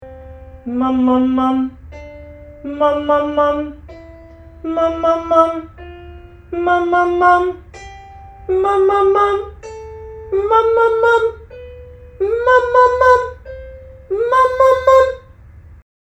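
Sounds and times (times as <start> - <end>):
person humming up to high C: 0.6 - 7.7, 8.3 - 15.3.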